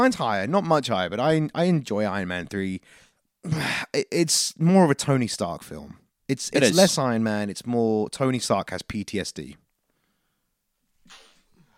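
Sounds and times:
speech: 0.0s - 9.6s
person sneezing: 3.5s - 3.9s, 6.6s - 6.9s.

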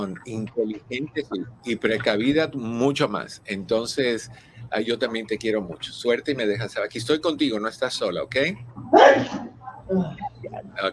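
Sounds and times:
speech: 0.0s - 10.9s
vocal sounds: 0.0s - 10.9s
single sharp explosive sneeze: 9.0s - 9.5s.

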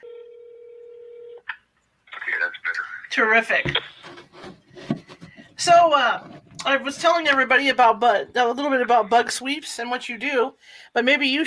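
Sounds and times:
steady telephone dial tone: 0.0s - 1.5s
speech: 3.2s - 4.0s, 5.6s - 11.4s.

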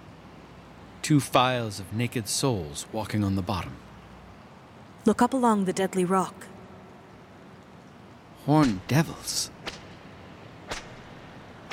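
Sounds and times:
steady hiss of noise: 0.0s - 11.7s
speech: 1.1s - 3.9s, 5.0s - 6.5s, 8.4s - 9.6s
whip cracks: 8.6s - 8.9s, 9.6s - 10.0s, 10.6s - 11.7s.

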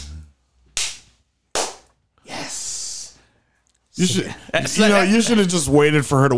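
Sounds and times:
hand slaps imitating spanking: 0.7s - 2.0s
speech: 4.0s - 6.3s.

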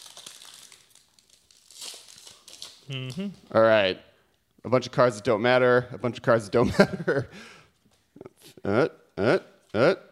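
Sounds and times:
Battle for Zendikar trading card booster pack foil wrapper crinkling as it is torn open: 0.0s - 3.2s
speech: 2.9s - 7.6s, 8.2s - 10.0s.

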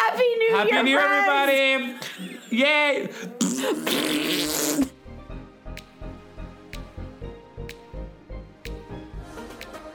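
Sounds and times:
speech: 0.6s - 4.9s
pet farting: 3.4s - 5.0s.

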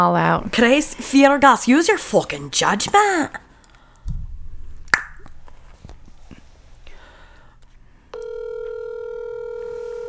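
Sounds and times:
speech: 0.0s - 3.4s
handling noises: 0.4s - 10.0s
loud electronic phone keypad tone: 8.1s - 10.0s.

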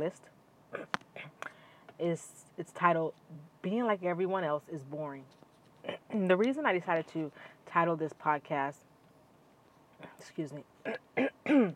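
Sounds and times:
speech: 0.0s - 1.0s, 2.0s - 8.9s, 10.0s - 11.7s
person clearing throat: 0.7s - 1.4s, 10.8s - 11.7s
person coughing: 10.8s - 11.7s.

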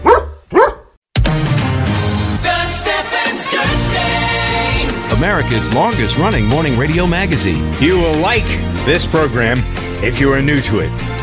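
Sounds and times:
dog barking: 0.0s - 1.0s
music: 1.1s - 11.2s
speech: 5.2s - 11.0s.

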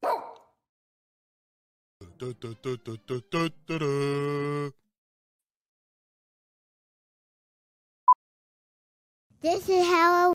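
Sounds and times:
dog barking: 0.0s - 0.6s
speech: 2.2s - 4.8s, 9.4s - 10.3s.

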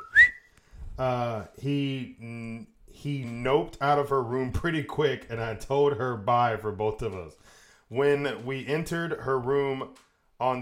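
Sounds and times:
sharp whistle: 0.0s - 0.5s
speech: 1.0s - 10.5s.

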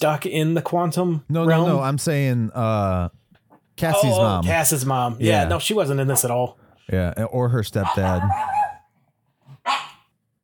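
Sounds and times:
speech: 0.0s - 3.2s, 3.8s - 8.6s
dog grunting: 7.8s - 8.8s
dog barking: 7.8s - 8.9s, 9.5s - 10.1s.

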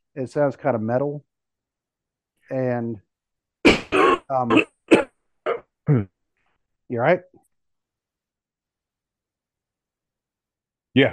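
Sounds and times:
speech: 0.2s - 1.3s, 2.5s - 3.1s, 4.3s - 5.1s, 5.9s - 6.2s, 6.9s - 7.4s, 11.0s - 11.1s
person coughing and clearing their throat: 3.7s - 6.1s.

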